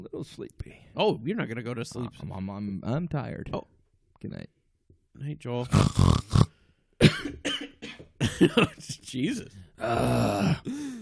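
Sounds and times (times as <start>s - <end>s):
speech: 0.0s - 4.6s, 5.2s - 6.5s, 8.4s - 11.0s
person coughing harshly: 7.0s - 8.8s.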